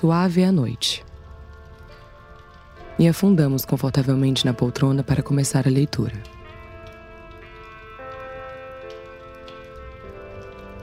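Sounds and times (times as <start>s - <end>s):
speech: 0.0s - 1.1s, 3.0s - 6.4s
fireplace crackling: 0.0s - 10.8s
old-style music playing softly from a gramophone: 0.3s - 10.8s.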